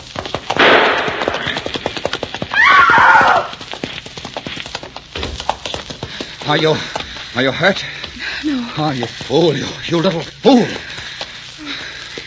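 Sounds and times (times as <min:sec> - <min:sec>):
galloping horse hoofbeats: 0:00.0 - 0:12.2
gunshot-like crack: 0:00.6 - 0:01.7
horse whinnying: 0:02.5 - 0:03.5
speech: 0:06.5 - 0:10.9.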